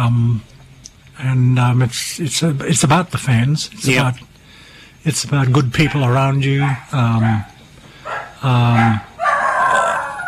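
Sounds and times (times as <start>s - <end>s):
speech: 0.0s - 0.5s, 1.2s - 4.3s, 5.0s - 7.6s, 8.4s - 9.1s
dogs barking and yelping: 5.8s - 10.2s.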